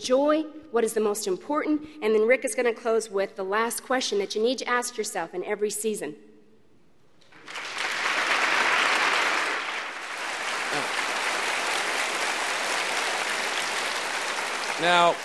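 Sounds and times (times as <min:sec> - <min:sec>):
speech: 0:00.0 - 0:06.3, 0:14.8 - 0:15.2
crowd applause: 0:07.3 - 0:15.2.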